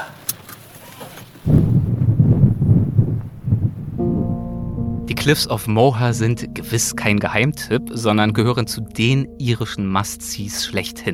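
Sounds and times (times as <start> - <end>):
soft patter of rain: 0.0 - 6.1
heavy gusts of wind buffeting: 1.4 - 5.2
steady tonal hum: 4.0 - 11.1
speech: 5.2 - 11.1.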